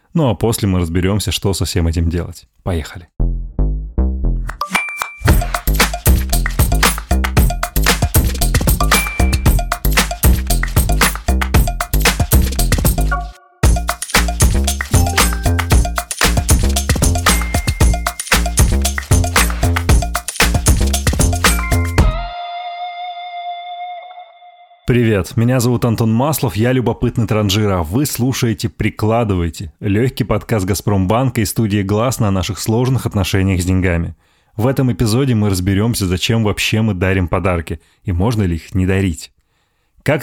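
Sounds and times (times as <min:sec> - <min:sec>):
speech: 0:00.2 - 0:03.2, 0:24.9 - 0:39.3, 0:40.0 - 0:40.2
upbeat instrumental podcast theme jingle with bell-like tones: 0:04.4 - 0:22.4.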